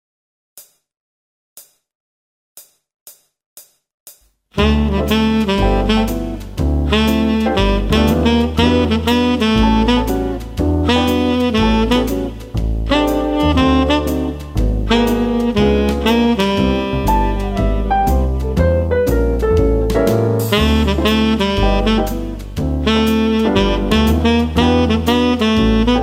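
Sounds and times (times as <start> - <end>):
jazz melody: 4.6 - 26.0.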